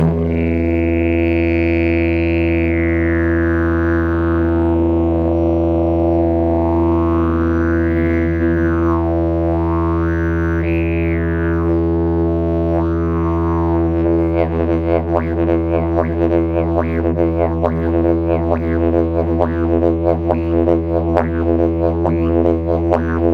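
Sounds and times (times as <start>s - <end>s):
elm concert didgeridoo: 0.0s - 23.3s.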